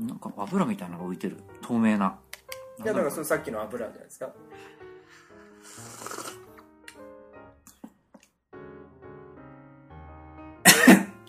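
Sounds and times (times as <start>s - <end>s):
speech: 0.2s - 2.2s, 2.8s - 4.8s
person coughing and choking on spicy soup: 10.6s - 11.2s.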